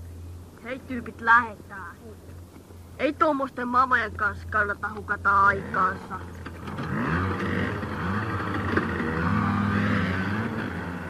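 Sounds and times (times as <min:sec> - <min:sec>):
speech: 0:00.6 - 0:02.4, 0:03.0 - 0:07.0
mopeds revving and driving away: 0:03.7 - 0:11.0.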